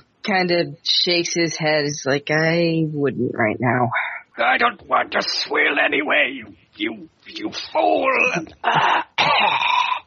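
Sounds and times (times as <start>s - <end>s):
speech: 0.2s - 10.0s
person coughing with a wet phlegmy rasp: 8.2s - 10.0s.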